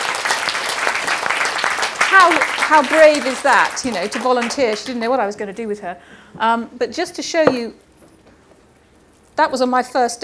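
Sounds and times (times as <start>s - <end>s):
audience clapping: 0.0s - 5.0s
speech: 2.1s - 7.8s, 9.4s - 10.2s.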